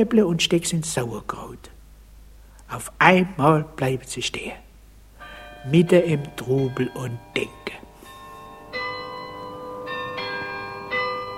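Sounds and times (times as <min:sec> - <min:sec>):
speech: 0:00.0 - 0:01.7, 0:02.7 - 0:04.6, 0:05.6 - 0:07.8
town hall glockenspiel bells chiming: 0:05.2 - 0:11.3.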